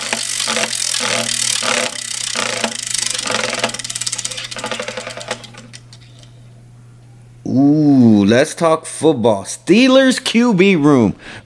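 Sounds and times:
prize wheel spinning and clicking: 0:00.0 - 0:06.3
speech: 0:07.5 - 0:11.4.

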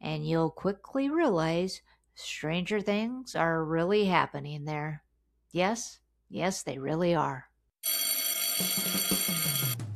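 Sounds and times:
speech: 0:00.1 - 0:09.1
school dismissal bell ringing: 0:07.8 - 0:09.8.

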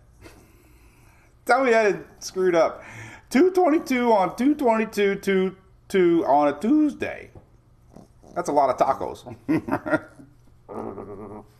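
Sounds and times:
speech: 0:01.5 - 0:07.4, 0:08.4 - 0:10.1
dog growling low: 0:07.9 - 0:08.6, 0:10.0 - 0:11.5.

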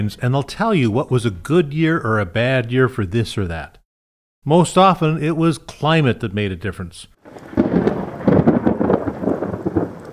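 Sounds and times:
speech: 0:00.0 - 0:03.8, 0:04.4 - 0:07.6
deep rolling thunder: 0:07.2 - 0:10.1
heavy rain: 0:07.2 - 0:10.1.

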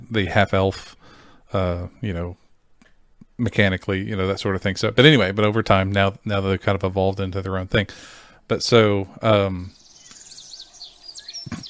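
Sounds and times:
speech: 0:00.1 - 0:02.4, 0:03.4 - 0:09.8
chirping birds in outdoor ambience background music: 0:09.5 - 0:11.6
buzzing insects in outdoor ambience background music: 0:09.6 - 0:11.6.

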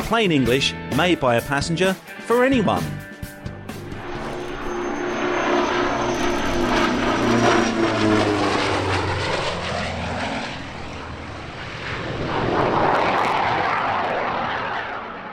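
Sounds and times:
speech: 0:00.1 - 0:03.1
Yak radial aircraft engine roaring with throbbing propeller drone: 0:02.9 - 0:15.3.

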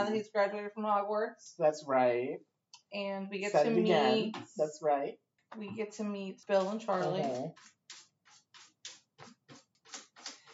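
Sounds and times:
speech: 0:00.0 - 0:07.8
cat scratching in a litter box in a basement: 0:06.5 - 0:10.5.

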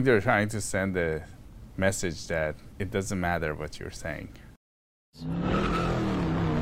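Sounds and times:
speech: 0:00.0 - 0:04.4, 0:05.2 - 0:05.8
car passing with loud exhaust: 0:05.2 - 0:06.6.

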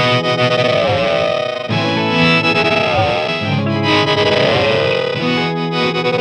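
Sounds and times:
synth-like distorted chorused guitar tone from an effects pedal: 0:00.0 - 0:06.1.

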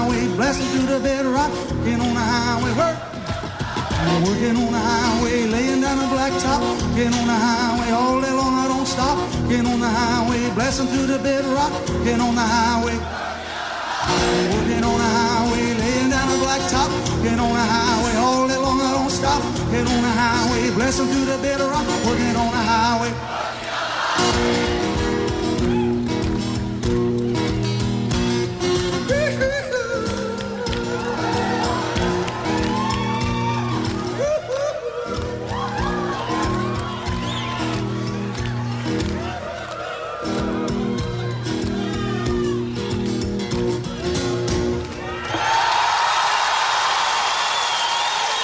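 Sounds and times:
live rock band playing loudly at a benefit concert: 0:00.0 - 0:13.1, 0:14.1 - 0:23.0, 0:24.2 - 0:45.2
crowd noise: 0:00.0 - 0:48.4
speech: 0:00.1 - 0:03.3, 0:04.0 - 0:13.4, 0:16.4 - 0:23.6
large audience applause and cheering: 0:03.0 - 0:04.4, 0:13.0 - 0:14.5, 0:23.1 - 0:26.7, 0:30.3 - 0:42.9, 0:44.0 - 0:48.4.

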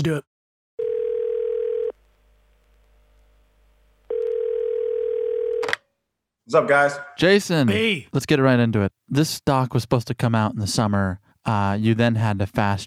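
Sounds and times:
speech: 0:00.0 - 0:00.3, 0:06.5 - 0:12.8
telephone ringing tone of an outgoing call: 0:00.8 - 0:02.0, 0:04.1 - 0:05.8
telephone click as the call connects: 0:05.5 - 0:05.8.

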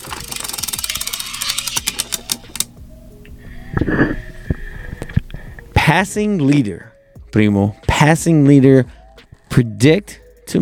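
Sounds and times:
prize wheel spinning and clicking: 0:00.0 - 0:02.7
speech: 0:03.8 - 0:04.2, 0:05.9 - 0:09.0, 0:09.6 - 0:10.6.

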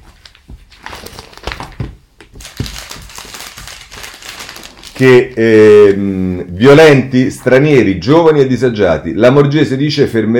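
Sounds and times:
newspaper pages flapping and thumping: 0:00.0 - 0:05.2
newspaper pages rustling and crinkling: 0:00.0 - 0:06.7
speech: 0:05.0 - 0:10.3.

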